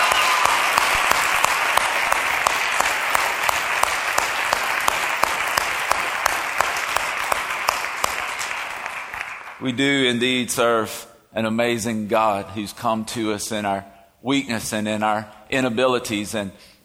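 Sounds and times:
roomful of people applauding: 0:00.0 - 0:10.1
speech: 0:09.6 - 0:16.7.

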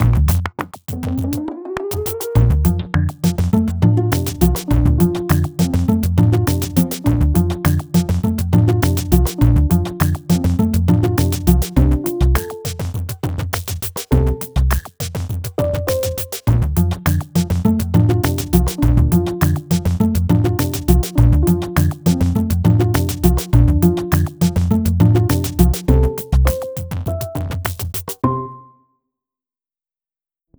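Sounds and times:
rhythm section: 0:00.0 - 0:28.2
strings: 0:02.6 - 0:12.6, 0:16.8 - 0:26.6.

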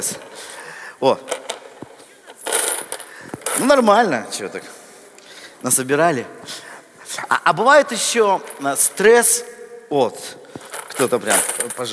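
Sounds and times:
speech: 0:00.0 - 0:00.3, 0:01.0 - 0:01.4, 0:03.6 - 0:04.8, 0:05.6 - 0:06.6, 0:07.2 - 0:10.4, 0:11.0 - 0:11.9
small metal change coins clinking and jingling: 0:01.3 - 0:04.0, 0:10.5 - 0:11.9.

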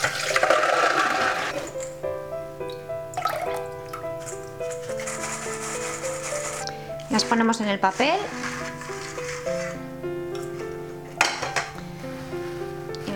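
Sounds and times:
water draining off soaked tiger nuts in a bowl: 0:00.0 - 0:02.0, 0:02.6 - 0:05.8
music: 0:00.0 - 0:13.1
light water trickling: 0:02.6 - 0:04.2
speech: 0:07.2 - 0:08.5.

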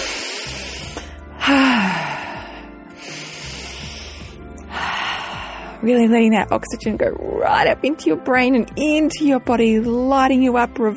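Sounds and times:
deep breaths drawn in through the nose and pushed out through the mouth: 0:00.0 - 0:05.8
speech: 0:01.5 - 0:02.0, 0:05.8 - 0:10.9.

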